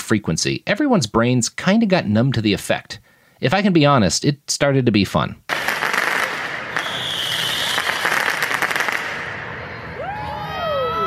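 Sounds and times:
speech: 0.1s - 5.5s
commercial-grade fireworks exploding outdoors: 5.5s - 10.4s
shrill whistling firework rockets rising: 5.5s - 11.0s
crowd noise: 6.1s - 11.0s.

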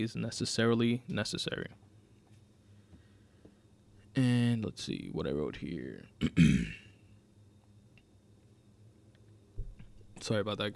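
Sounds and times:
speech: 0.0s - 1.9s, 4.2s - 6.8s, 10.2s - 10.7s
throat clearing: 6.2s - 7.0s.

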